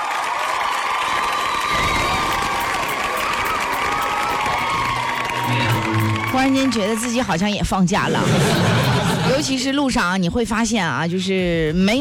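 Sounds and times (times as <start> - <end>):
large crowd screaming and cheering: 0.0 - 7.6
speech: 6.4 - 11.9
laughter: 8.0 - 9.7.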